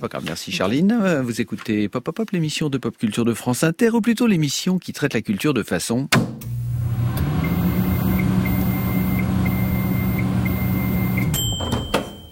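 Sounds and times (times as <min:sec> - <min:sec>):
speech: 0:00.0 - 0:06.5
microwave oven humming: 0:06.4 - 0:12.3
microwave oven pulsing high tone: 0:07.4 - 0:11.4.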